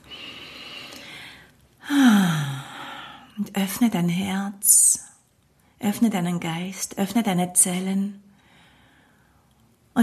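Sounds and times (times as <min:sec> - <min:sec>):
deep breath in and out: 0:00.0 - 0:03.3, 0:08.4 - 0:09.5
speech: 0:03.6 - 0:04.8, 0:05.8 - 0:08.3.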